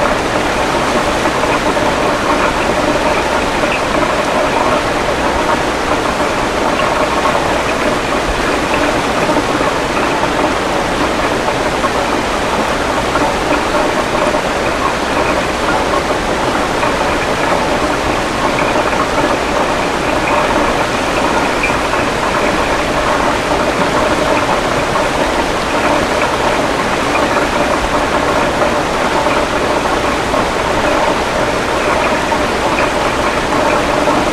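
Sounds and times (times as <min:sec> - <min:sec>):
river rushing beneath a footbridge: 0:00.0 - 0:34.3.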